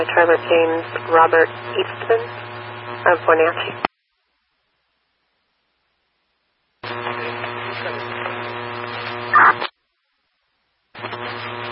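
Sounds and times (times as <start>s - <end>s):
radio static between radio transmissions: 0.0s - 3.9s, 6.8s - 9.8s, 11.0s - 11.7s
speech: 0.0s - 3.9s
steady buzzing hum: 0.0s - 3.9s, 6.8s - 9.7s, 10.9s - 11.7s.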